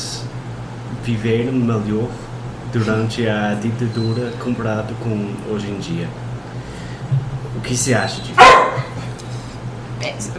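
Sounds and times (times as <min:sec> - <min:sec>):
low steady room hum: 0:00.0 - 0:10.3
speech: 0:01.0 - 0:06.2, 0:07.6 - 0:08.6
dog barking: 0:08.4 - 0:09.0.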